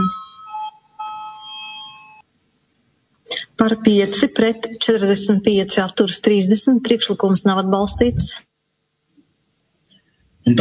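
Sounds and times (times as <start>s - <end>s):
electric bell ringing to call a vote in a parliament chamber: 0.0s - 2.2s
speech: 3.6s - 8.5s.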